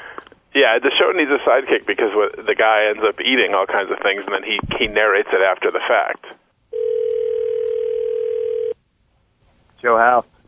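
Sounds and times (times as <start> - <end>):
speech: 0.6 - 6.4, 9.8 - 10.3
telephone dial tone while placing a phone call: 6.7 - 8.8.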